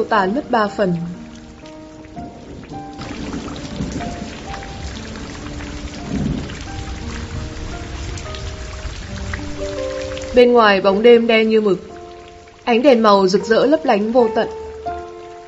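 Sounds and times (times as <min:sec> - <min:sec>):
speech: 0:00.0 - 0:01.2, 0:10.4 - 0:11.9, 0:12.7 - 0:14.6
steady rain falling on surfaces: 0:00.0 - 0:15.4
low rumbling swells: 0:00.2 - 0:12.5
wind: 0:01.0 - 0:12.7.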